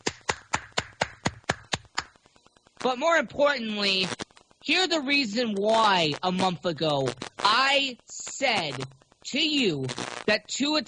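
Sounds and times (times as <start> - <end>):
round of applause with sharp hand claps: 0.0 - 2.2
speech: 2.8 - 10.8.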